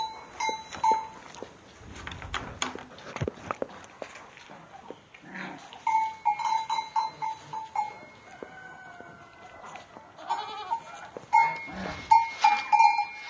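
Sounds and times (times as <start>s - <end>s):
bell clanking: 0.0s - 1.3s, 5.9s - 8.4s, 11.3s - 13.2s
goats shuffling: 0.0s - 13.2s
goats bleating in a pen: 10.2s - 12.0s.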